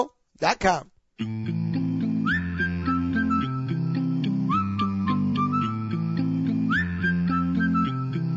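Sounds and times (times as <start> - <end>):
speech: 0.0 - 1.6
a cappella group singing steady chords: 1.2 - 6.3
crisp rhythmic vocal percussion: 1.2 - 8.3
bright whistle swooping upward: 2.2 - 8.3.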